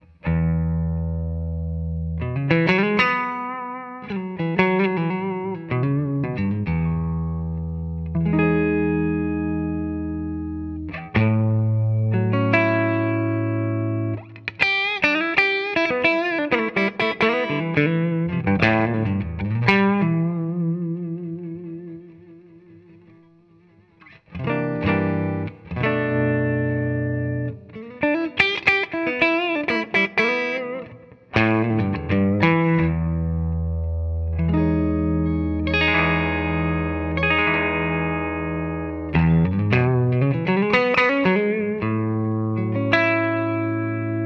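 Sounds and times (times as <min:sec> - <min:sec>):
clean Strat electric guitar on neck pickup through open back cabinet: 0:00.0 - 0:44.2.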